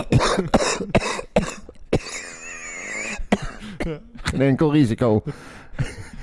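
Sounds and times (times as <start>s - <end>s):
person clearing throat with a wheezy strained sound: 0.0s - 4.4s
person coughing in short harsh bursts: 0.0s - 4.4s
speech: 3.9s - 5.6s.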